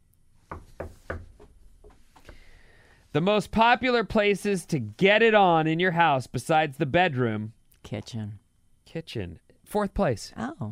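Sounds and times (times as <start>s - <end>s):
knuckles knocking on wood: 0.5s - 2.0s
speech: 3.1s - 10.7s.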